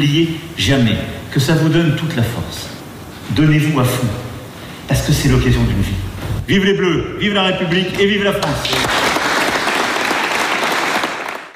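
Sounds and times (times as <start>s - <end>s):
speech: 0.0s - 4.3s, 4.9s - 9.0s
large crowd applauding after a speech: 8.6s - 11.5s.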